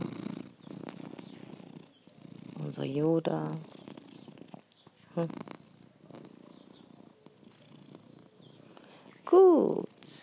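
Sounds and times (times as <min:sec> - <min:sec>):
domestic cat purring into the microphone: 0:00.0 - 0:10.2
speech: 0:02.7 - 0:03.8, 0:05.2 - 0:05.4.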